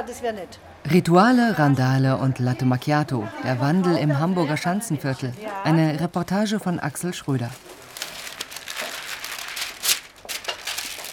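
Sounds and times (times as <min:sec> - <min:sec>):
speech: 0:00.0 - 0:07.8
paper crinkling while wrapping a purchase in a small specialty shop: 0:07.3 - 0:11.1.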